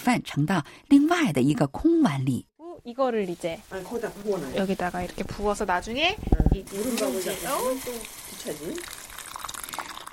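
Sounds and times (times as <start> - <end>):
speech: 0.1 - 9.0
hot water sizzling in a scorching stone pot: 3.0 - 10.1.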